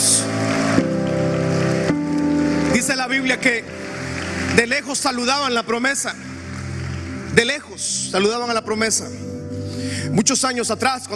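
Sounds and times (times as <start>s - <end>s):
audience applauding: 0.0s - 8.0s
sustained keyboard chords: 0.0s - 11.1s
speech: 3.1s - 3.8s, 4.6s - 6.3s, 7.4s - 9.4s, 10.2s - 11.1s.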